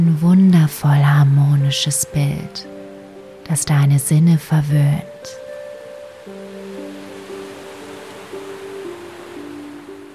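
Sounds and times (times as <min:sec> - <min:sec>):
speech: 0:00.0 - 0:02.8, 0:03.5 - 0:05.4
ocean surf rushing over a black sand beach: 0:06.1 - 0:10.1.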